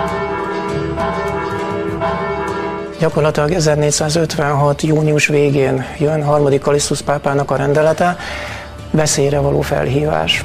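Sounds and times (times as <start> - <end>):
church bell ringing: 0.0 - 3.7
speech: 3.0 - 10.4.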